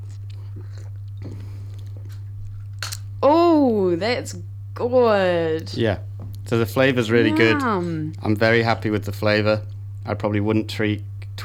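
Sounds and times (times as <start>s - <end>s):
person sipping a freshly brewed cup of coffee: 0.0s - 3.1s
steady low electrical hum: 0.0s - 11.4s
speech: 3.2s - 11.4s.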